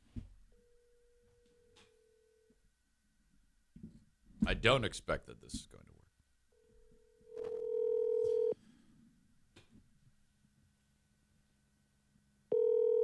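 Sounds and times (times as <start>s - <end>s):
faint hum: 0.0s - 13.0s
speech: 4.5s - 6.0s
electronic telephone busy tone from a failed call: 6.6s - 8.6s, 12.5s - 13.0s.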